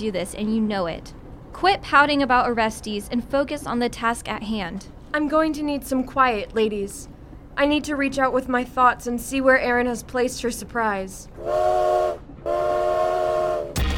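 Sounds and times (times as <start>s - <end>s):
speech: 0.0s - 12.6s
steam train whistle: 11.4s - 13.8s.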